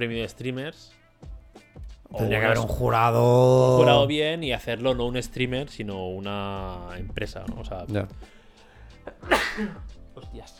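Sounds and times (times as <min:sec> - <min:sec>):
speech: 0:00.0 - 0:01.0, 0:02.1 - 0:08.4, 0:09.2 - 0:10.5
person exclaiming: 0:02.1 - 0:04.2
person sneezing: 0:09.2 - 0:09.9.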